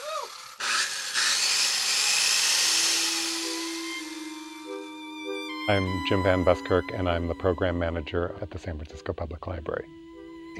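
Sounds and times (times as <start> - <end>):
power tool drilling to rip books apart: 0.0 - 5.6
speech: 5.7 - 10.5.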